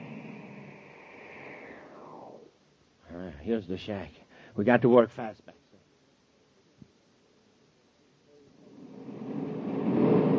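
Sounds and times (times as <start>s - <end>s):
speech: 3.4s - 5.6s
spaceship landing with deep rushing roar: 8.7s - 10.3s.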